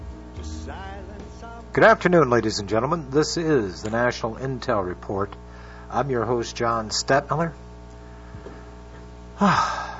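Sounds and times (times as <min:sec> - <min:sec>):
speech: 0:00.7 - 0:07.6, 0:09.4 - 0:09.8
man gasping out of breath after running: 0:09.4 - 0:09.9.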